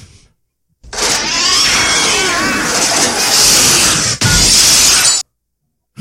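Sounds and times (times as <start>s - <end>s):
house window glass shattering as a chunk of ice smashes through: 1.0s - 5.2s.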